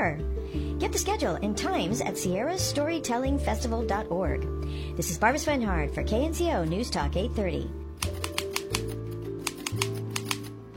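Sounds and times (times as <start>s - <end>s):
low sustained musical bed: 0.0s - 10.7s
speech: 0.1s - 7.8s
typewriter keys clacking: 8.0s - 10.6s.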